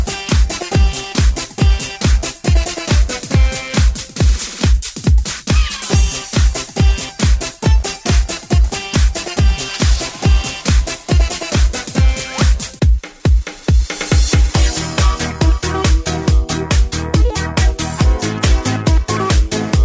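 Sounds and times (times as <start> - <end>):
music: 0.0 - 19.8.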